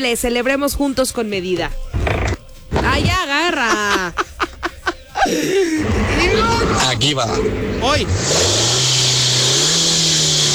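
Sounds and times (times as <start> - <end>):
speech: 0.0 - 2.2, 2.9 - 4.2, 5.2 - 8.8
laughter: 3.5 - 6.1
motorcycle engine revving with a whining buzz: 5.8 - 10.5.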